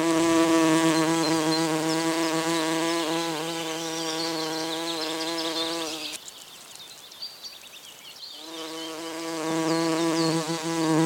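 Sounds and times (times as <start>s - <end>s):
bumblebee buzzing: 0.0s - 6.2s, 8.4s - 11.0s.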